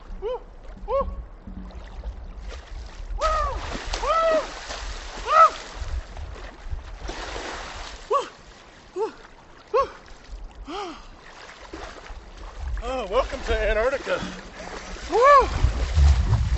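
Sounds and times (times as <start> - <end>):
people wading and splashing into river water: 0.0 - 16.5
several people shouting, whooping and calling out excitedly: 3.2 - 4.5, 5.2 - 5.6, 15.1 - 15.7.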